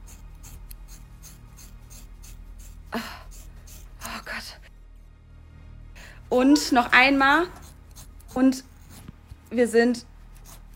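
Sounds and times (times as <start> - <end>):
scissors cutting through very thick long hair: 0.0 - 4.5, 7.2 - 10.7
speech: 2.9 - 3.2, 4.4 - 4.6, 6.3 - 7.6, 8.4 - 8.7, 9.5 - 10.1.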